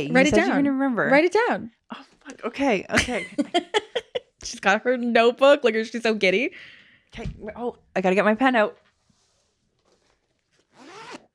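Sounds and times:
speech: 0.0s - 8.8s
laughter: 3.0s - 4.4s
pencil case zipper being unzipped: 9.3s - 11.3s.

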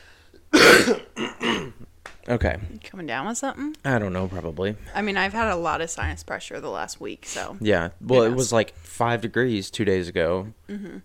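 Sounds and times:
raspy throat clearing: 0.5s - 1.8s
cough: 0.5s - 1.9s
speech: 0.9s - 1.3s, 2.3s - 11.0s.

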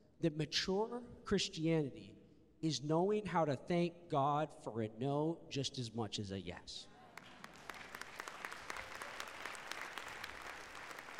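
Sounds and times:
speech: 0.2s - 6.9s
room full of people applauding: 7.2s - 11.1s.

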